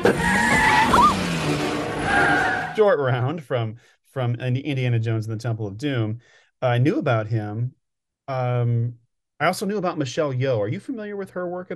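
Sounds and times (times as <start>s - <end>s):
car tires screeching in a skid in a chase scene: 0.0s - 3.0s
speech: 2.8s - 11.7s.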